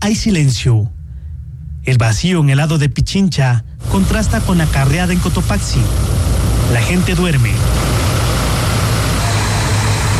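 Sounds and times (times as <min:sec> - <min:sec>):
speech: 0:00.0 - 0:01.0, 0:01.8 - 0:07.9
cargo truck engines running on a highway at dawn: 0:03.8 - 0:10.1.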